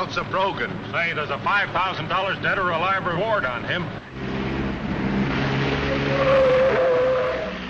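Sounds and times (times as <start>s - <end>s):
car engines roaring in a car chase: 0.0s - 7.6s
speech: 0.2s - 4.3s, 6.2s - 6.6s
tires squealing in a sustained high screech: 4.1s - 7.6s.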